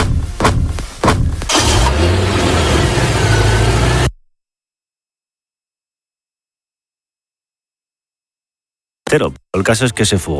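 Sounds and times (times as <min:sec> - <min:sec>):
dull thumps: 0:00.0 - 0:01.6
car engine revving as the vehicle pulls off: 0:01.5 - 0:04.2
speech: 0:09.1 - 0:10.3.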